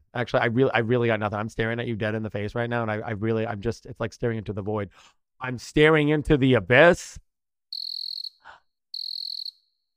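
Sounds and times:
speech: 0.2s - 7.2s
cricket chirping: 7.7s - 9.7s.

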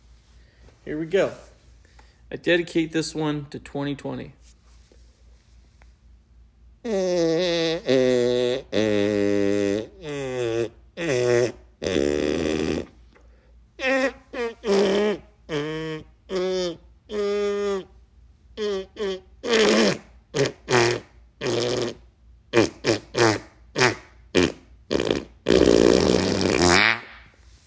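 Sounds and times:
speech: 0.8s - 1.5s, 2.3s - 4.6s, 6.8s - 9.5s
fart noises from a novelty fart instrument: 6.8s - 13.0s, 13.8s - 17.9s, 18.6s - 27.3s.

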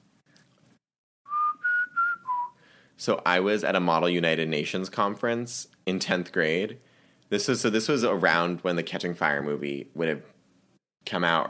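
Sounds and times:
person whistling a short four-note tune: 1.3s - 2.6s
speech: 3.0s - 10.4s, 11.0s - 11.4s.

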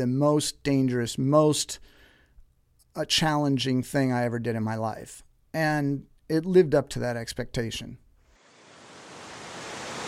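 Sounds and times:
speech: 0.0s - 2.0s, 3.0s - 8.0s
rushing water from an intense river waterfall: 8.3s - 10.0s.

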